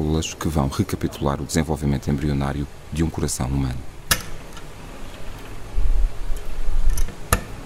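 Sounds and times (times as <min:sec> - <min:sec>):
speech: 0:00.1 - 0:04.0
low mechanical rumble of cell culture incubator: 0:01.2 - 0:07.6
cell culture incubator door latch click: 0:04.1 - 0:04.4.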